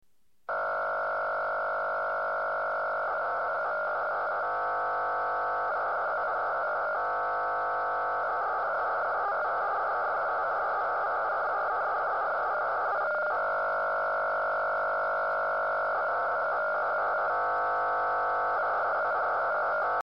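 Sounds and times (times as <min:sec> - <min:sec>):
PSK radio data signal: 0:00.5 - 0:20.0.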